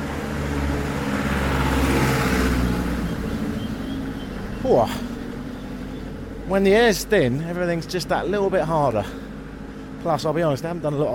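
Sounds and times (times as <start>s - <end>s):
car driving past on a hill road: 0.0s - 6.5s
rising chirp: 2.7s - 6.2s
speech: 4.7s - 5.1s, 6.5s - 9.2s, 10.0s - 11.1s.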